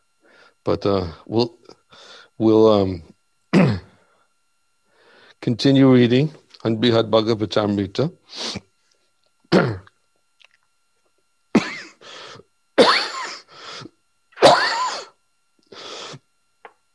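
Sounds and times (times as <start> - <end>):
speech: 0.6 - 3.9, 5.4 - 8.7, 9.5 - 9.9
person with a cold coughing: 3.5 - 4.0, 9.5 - 9.9, 11.5 - 12.0, 12.8 - 13.5, 14.4 - 15.2.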